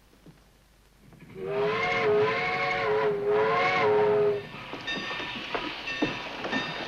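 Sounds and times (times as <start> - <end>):
steam train rumbling and clanking on rails: 1.0 - 6.8
multi-toned steam train whistle: 1.3 - 4.5.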